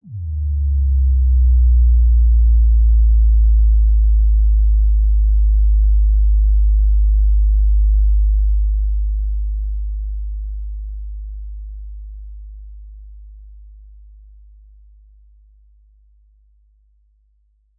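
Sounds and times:
sub bass dive: 0.0s - 15.3s.

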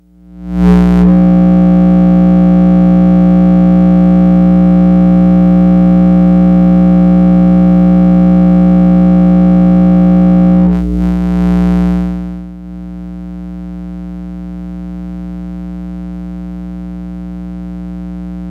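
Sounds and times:
wall wart power adapter hum: 0.0s - 18.4s.

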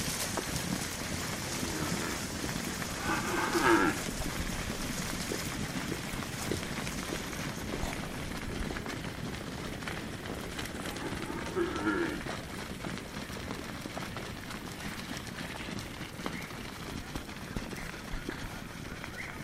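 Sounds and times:
rumble of cows running about: 0.0s - 19.4s
cow mooing: 1.5s - 2.3s, 3.0s - 4.1s, 10.8s - 12.2s.

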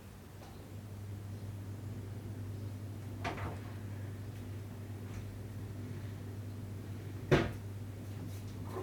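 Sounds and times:
house room noise: 0.2s - 8.8s.

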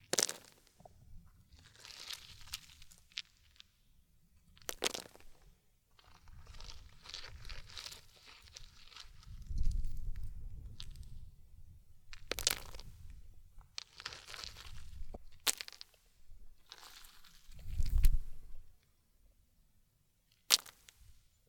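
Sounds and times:
rocks falling on ground: 0.1s - 0.7s, 1.6s - 3.6s, 4.6s - 5.4s, 6.0s - 11.2s, 12.1s - 16.0s, 16.6s - 18.6s, 20.5s - 21.0s.

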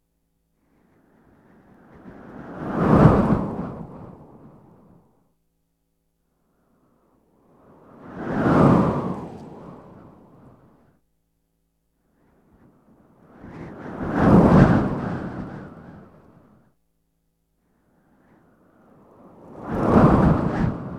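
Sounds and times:
strong wind: 0.8s - 5.1s, 7.4s - 10.8s, 12.6s - 16.6s, 18.0s - 20.9s.

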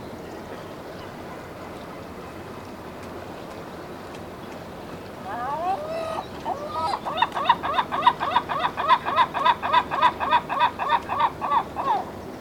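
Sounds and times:
gull long call: 5.2s - 12.2s.

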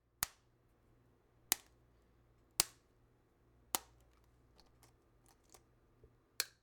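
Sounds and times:
egg cracking: 3.8s - 5.6s.

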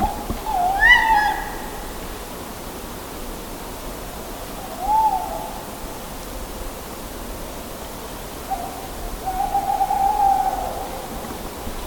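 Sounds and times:
owl hooting: 0.0s - 2.0s, 4.6s - 5.7s, 8.5s - 11.2s.

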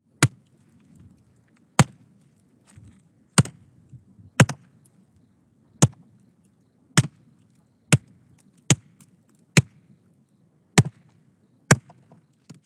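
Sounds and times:
axe chopping wood: 0.2s - 0.4s, 1.8s - 2.0s, 3.4s - 3.6s, 4.4s - 4.7s, 5.8s - 6.0s, 7.0s - 7.2s, 7.9s - 8.1s, 8.7s - 8.9s, 9.6s - 9.8s, 10.8s - 11.0s, 11.7s - 12.6s.

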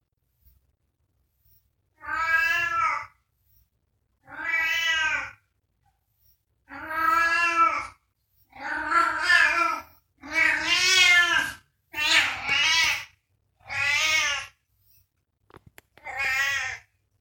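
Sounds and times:
domestic cat meowing: 2.0s - 3.2s, 4.2s - 5.4s, 6.7s - 14.6s, 16.0s - 16.9s.

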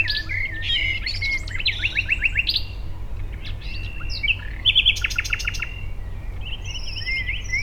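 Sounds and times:
common nightingale song: 0.0s - 7.6s.

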